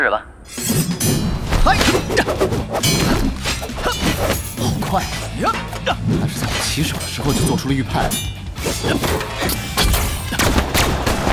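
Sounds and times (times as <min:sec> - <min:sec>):
speech: 0:00.0 - 0:01.0, 0:04.9 - 0:09.7
heavy thuds: 0:00.5 - 0:11.3
anti-tank cannon fire in a video game: 0:10.2 - 0:11.3.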